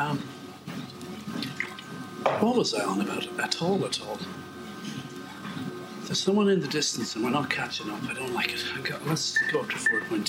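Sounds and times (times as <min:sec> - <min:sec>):
water sloshing while drinking: 0:00.8 - 0:02.1
speech: 0:02.4 - 0:04.5, 0:06.1 - 0:10.2.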